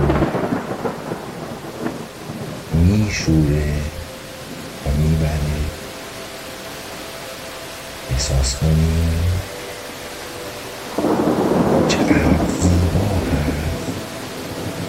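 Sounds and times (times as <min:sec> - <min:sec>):
low thunder rumbling: 0:00.0 - 0:05.8, 0:11.0 - 0:14.8
steady rain: 0:00.0 - 0:14.8
speech: 0:03.1 - 0:03.9, 0:08.2 - 0:09.4.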